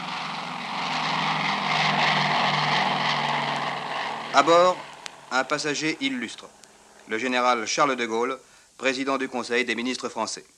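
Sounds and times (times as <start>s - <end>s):
four-engine Super Constellation propeller airliner taking off at Orly: 0.0s - 8.2s
speech: 4.4s - 10.5s.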